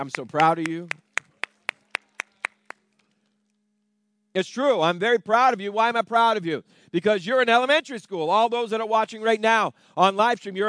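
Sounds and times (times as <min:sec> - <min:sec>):
speech: 0:00.0 - 0:01.0, 0:04.4 - 0:10.6
audience clapping at an elementary school graduation: 0:00.0 - 0:03.2.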